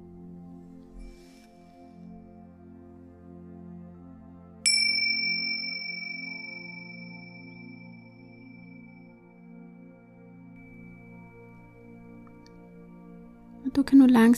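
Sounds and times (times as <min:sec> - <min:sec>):
single bell struck and ringing: 0:04.7 - 0:08.9
speech: 0:13.7 - 0:14.3.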